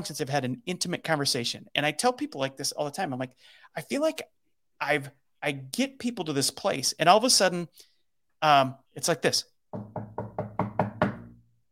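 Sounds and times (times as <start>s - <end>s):
speech: 0.0s - 10.0s
sharp knocks on a wooden door: 9.7s - 11.4s.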